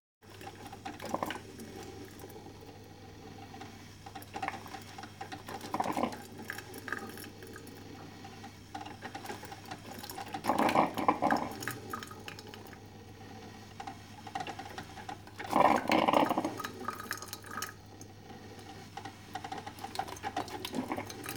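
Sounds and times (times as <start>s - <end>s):
coffee machine: 0.2s - 21.3s.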